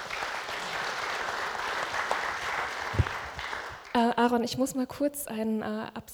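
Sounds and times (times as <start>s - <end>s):
audience clapping steadily: 0.0s - 4.1s
speech: 4.0s - 6.1s.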